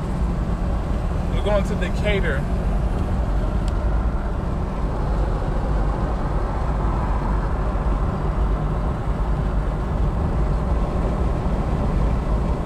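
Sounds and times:
car engine drone and road noise: 0.0s - 12.6s
speech: 1.4s - 2.6s.

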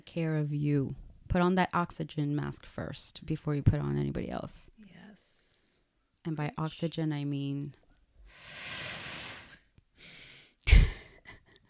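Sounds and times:
speech: 0.0s - 5.4s, 6.2s - 8.6s
breathy exhale: 8.3s - 10.5s
long airy inhale: 8.3s - 10.5s.

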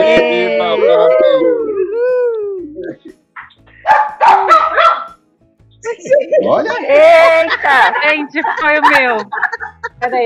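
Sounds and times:
laughter: 0.0s - 2.1s, 5.8s - 10.2s
dog making short sharp vocal bursts: 3.8s - 5.2s
speech: 6.5s - 10.2s.

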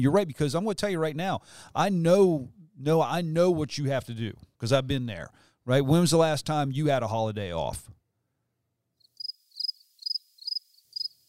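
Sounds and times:
speech: 0.0s - 8.0s
crickets chirping as a comedic sound effect: 9.0s - 11.2s.

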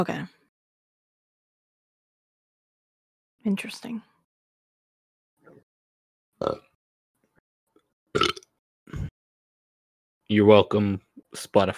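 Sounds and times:
speech: 0.0s - 0.4s, 3.4s - 4.1s, 6.4s - 6.7s, 10.3s - 11.7s
throaty burps: 6.4s - 6.8s, 8.1s - 9.1s.

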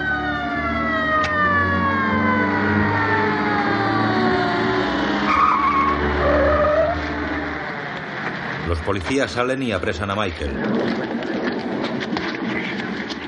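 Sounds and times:
police patrol cars pulling up and stopping at a door: 0.0s - 13.2s
screeching whine of police patrol cars: 2.2s - 8.8s
speech: 8.8s - 11.5s.

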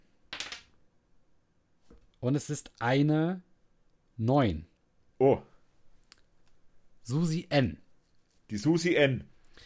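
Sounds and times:
dice clattering: 0.3s - 0.8s
speech: 2.2s - 3.5s, 4.2s - 5.5s, 7.1s - 7.8s, 8.5s - 9.6s.

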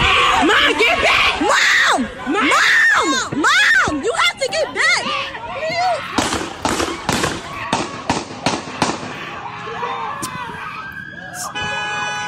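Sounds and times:
agitated voices shouting in a noisy street: 0.0s - 12.2s
police gunshots in recorded footage: 6.2s - 9.3s.

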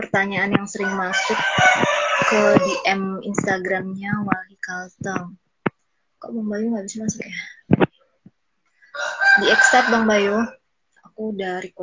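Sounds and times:
chicken clucking: 0.1s - 4.4s, 9.0s - 10.5s
speech: 0.1s - 5.4s, 6.2s - 7.5s, 9.0s - 11.8s
chicken sustained nasal squawk: 0.8s - 3.0s, 8.9s - 10.6s.

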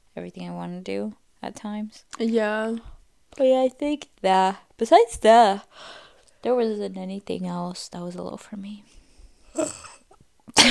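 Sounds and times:
speech: 0.2s - 9.0s
drawn-out throaty yawn: 9.6s - 10.0s
loud sharp cough: 9.6s - 10.6s.

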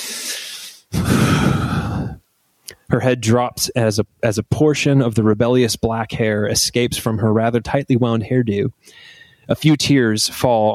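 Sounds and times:
woman taking a long shuddering breath in a back room: 1.0s - 2.2s
speech: 2.9s - 10.7s.

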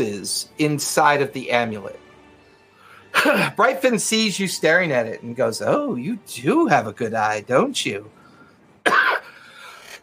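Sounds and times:
speech: 0.0s - 2.0s, 3.2s - 8.2s
person coughing: 3.1s - 3.6s, 8.8s - 10.0s
raspy exhale after a cough: 9.3s - 10.0s.

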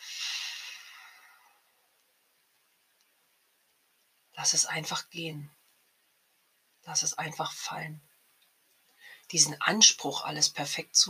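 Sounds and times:
long exhale through pressed lips during a guided breathing exercise: 0.0s - 1.6s
speech: 4.4s - 5.6s, 6.9s - 8.1s, 9.3s - 11.0s.

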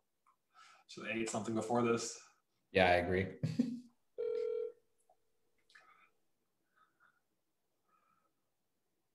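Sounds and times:
speech: 0.9s - 3.7s
phone call electronic ring tone: 4.2s - 4.8s.

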